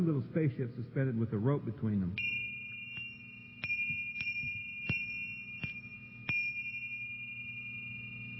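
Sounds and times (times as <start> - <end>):
speech: 0.0 - 2.4
low hum: 0.0 - 8.3
Tibetan double bells struck together: 2.2 - 8.3.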